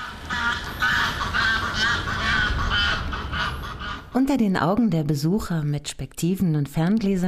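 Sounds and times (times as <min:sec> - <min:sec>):
goose and gander honking and answering each other: 0:00.0 - 0:04.2
speech: 0:04.2 - 0:07.2.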